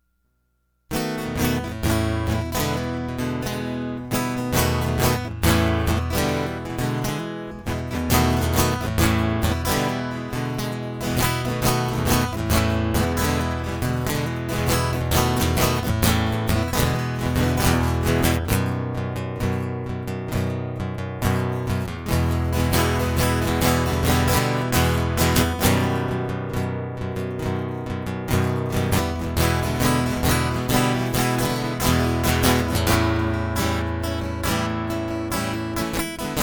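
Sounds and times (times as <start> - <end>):
tight guitar loop: 0.9 - 36.4.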